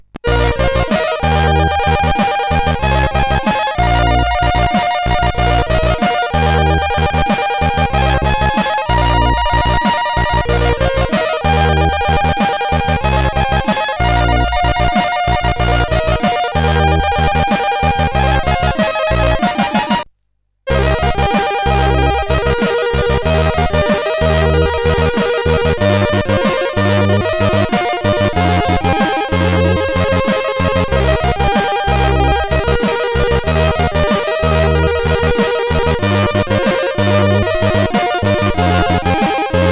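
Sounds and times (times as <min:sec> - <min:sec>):
steady SID chip synthesizer tone: 0:00.2 - 0:20.0, 0:20.7 - 0:39.7.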